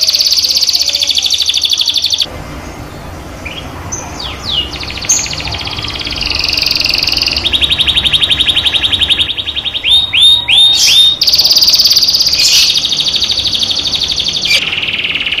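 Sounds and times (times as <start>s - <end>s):
canary tutor recording song with fast high trills: 0.0s - 15.3s.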